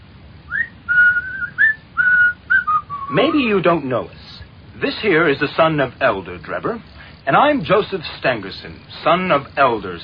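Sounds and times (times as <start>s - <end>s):
faint noise: 0.0s - 10.0s
young man whistling a short tune: 0.5s - 3.2s
speech: 3.1s - 10.0s.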